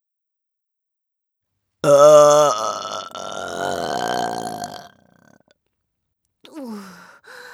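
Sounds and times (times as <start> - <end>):
loud drawn-out raspy burp: 1.8 - 5.4.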